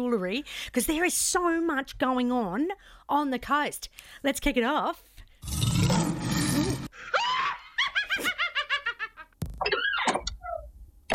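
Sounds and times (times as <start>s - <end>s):
speech: 0.0s - 7.2s
rough growling lion roar: 5.4s - 6.9s
witch's high rapid cackling laugh: 7.0s - 10.0s.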